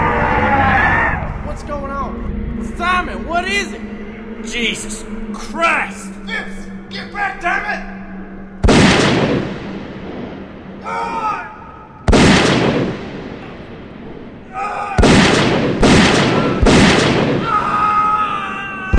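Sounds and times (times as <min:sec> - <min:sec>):
people shouting: 0:00.0 - 0:01.5, 0:10.8 - 0:11.8, 0:14.4 - 0:18.9
speech: 0:03.0 - 0:08.0, 0:10.8 - 0:11.2
booming gunshots: 0:08.6 - 0:17.8.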